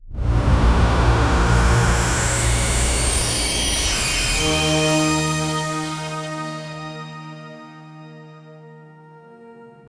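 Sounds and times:
futuristic opening startup sound effect: 0:00.1 - 0:06.8.

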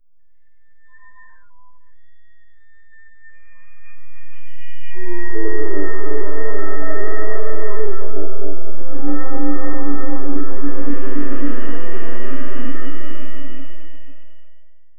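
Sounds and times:
suspense and thriller music: 0:03.9 - 0:14.4.

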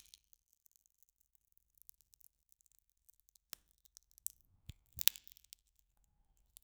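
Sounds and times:
soft cracking: 0:04.6 - 0:05.3.

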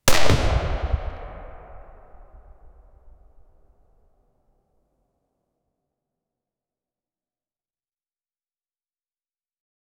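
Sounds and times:
dry gunpowder explosion: 0:00.1 - 0:03.5.

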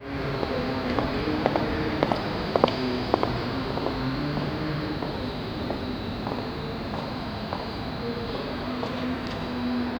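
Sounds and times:
cinematic slow motion city soundscape: 0:00.0 - 0:09.9.

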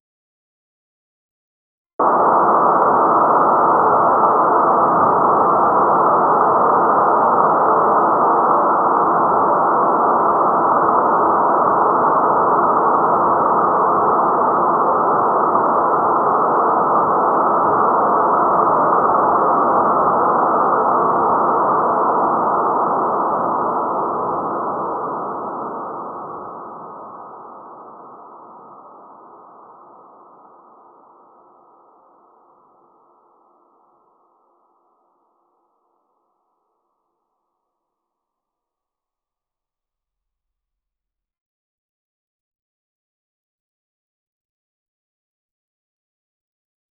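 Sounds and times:
white noise: 0:02.0 - 0:36.2.

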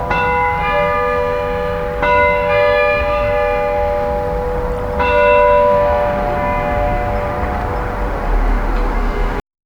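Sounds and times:
distant car horns in a city: 0:00.0 - 0:09.4.

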